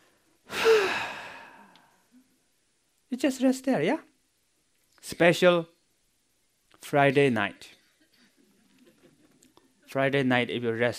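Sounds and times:
person taking a deep breath while resting in a chair: 0.5 - 2.0
speech: 3.1 - 4.1, 5.0 - 5.7, 6.8 - 7.8, 9.9 - 10.9.

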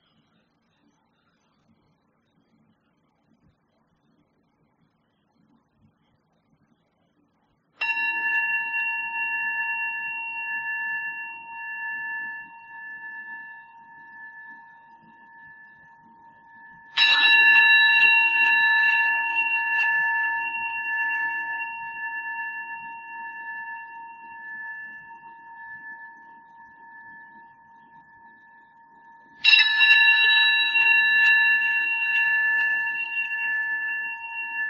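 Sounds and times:
meditation bell ringing: 7.8 - 34.6.

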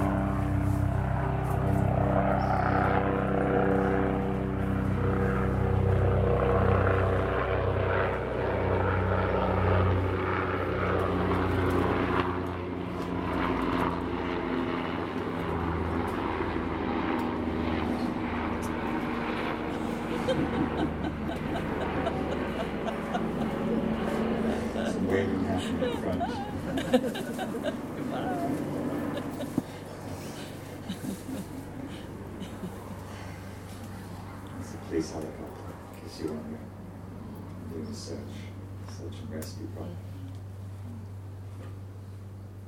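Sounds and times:
helicopters flying overhead: 0.0 - 42.6
laughter: 19.6 - 33.2.

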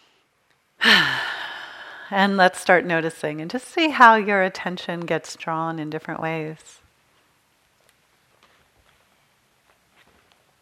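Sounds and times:
deep breath released as a sigh during a guided meditation retreat: 0.8 - 2.2
speech: 2.1 - 6.8.

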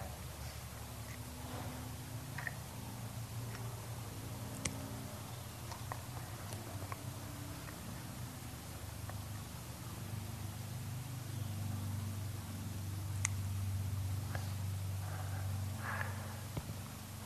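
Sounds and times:
steady low rumble of distant traffic: 0.0 - 17.2.

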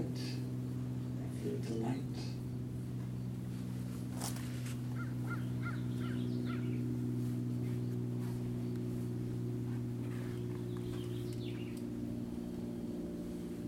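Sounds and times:
constant low mechanical drone: 0.0 - 13.6
speech: 1.4 - 2.3
finches, vireos and juncos chirping and trilling: 4.8 - 12.3.

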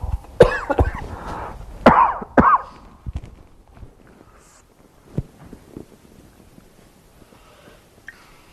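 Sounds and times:
sharp throaty coughs: 0.4 - 1.1, 1.8 - 2.8.

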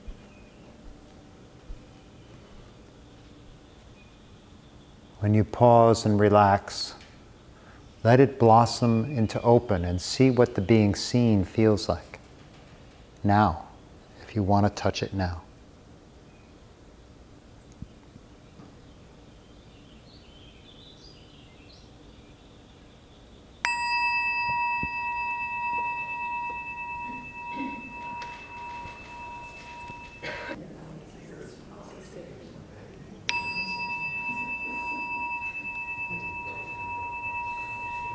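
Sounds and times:
speech: 5.2 - 7.0, 8.0 - 12.1, 13.2 - 13.6, 14.3 - 15.5
meditation bell struck during guided meditation: 23.6 - 30.6, 33.3 - 38.1.

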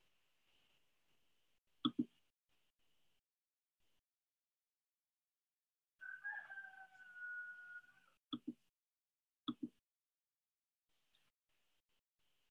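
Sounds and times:
rooster crowing: 6.0 - 8.2.

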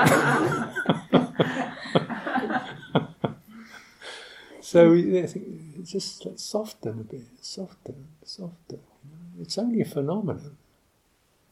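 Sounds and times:
man coughing in sharp throaty bursts: 0.0 - 2.1
laughter: 0.0 - 3.5
steady hiss: 0.0 - 11.5
speech: 4.7 - 8.7, 9.4 - 10.6.

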